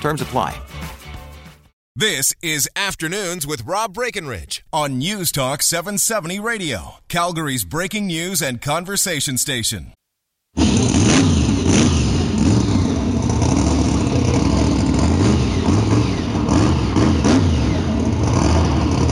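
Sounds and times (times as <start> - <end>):
speech: 0.0 - 0.8, 2.0 - 10.0
monster truck engine revving at a touring monster truck event: 10.6 - 19.1.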